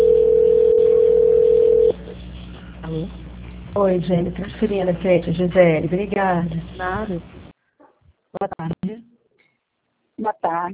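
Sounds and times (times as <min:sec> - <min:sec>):
telephone tone during a call transfer: 0:00.0 - 0:02.0
speech: 0:03.8 - 0:07.4, 0:08.4 - 0:09.1, 0:10.2 - 0:10.7.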